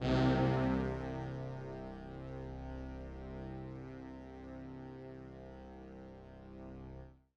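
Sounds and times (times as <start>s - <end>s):
brass instruments: 0.0s - 4.2s.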